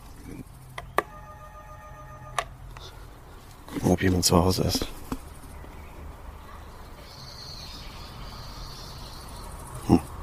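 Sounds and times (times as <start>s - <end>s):
low hum: 0.0s - 10.2s
doorbell chime at an apartment door: 1.1s - 2.4s
speech: 4.0s - 5.0s.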